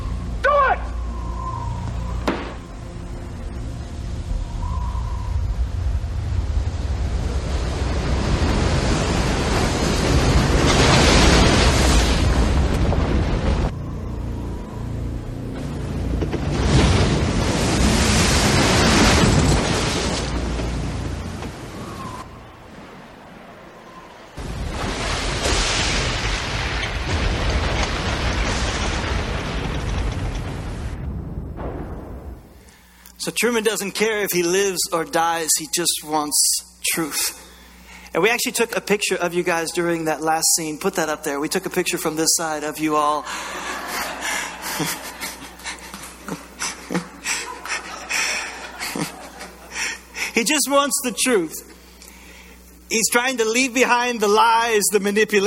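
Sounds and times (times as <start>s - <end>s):
howling storm wind at sea around a boat: 0.0s - 15.5s, 17.9s - 24.8s
heavy waves crashing at sea around a boat: 5.6s - 13.8s, 16.4s - 30.9s
speech: 33.2s - 37.4s, 38.1s - 44.0s, 44.8s - 45.0s, 50.4s - 51.8s, 52.9s - 55.4s
laughter: 43.2s - 50.4s.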